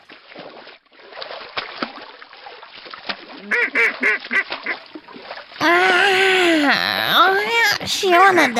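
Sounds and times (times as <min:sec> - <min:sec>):
ducks splashing in a pond: 0:00.0 - 0:06.8
speech: 0:03.4 - 0:04.5, 0:07.9 - 0:08.5
ducks quacking: 0:03.5 - 0:04.8.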